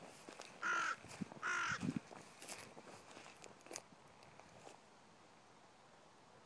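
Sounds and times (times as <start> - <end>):
lone crow cawing: 0.6 - 2.1.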